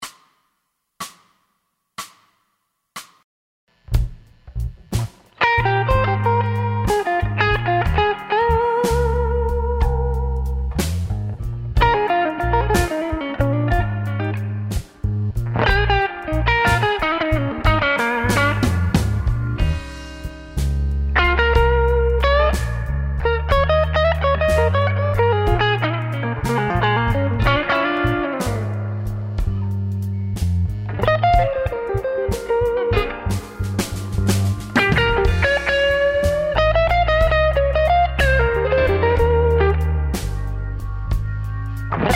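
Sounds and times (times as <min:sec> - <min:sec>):
intermediate Bb instrument solo: 0:03.8 - 0:42.1.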